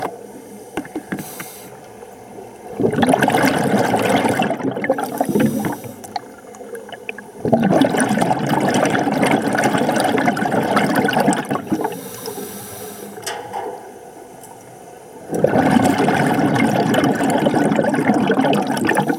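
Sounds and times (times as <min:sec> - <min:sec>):
underwater Rhone river in Arles: 0:00.0 - 0:19.1.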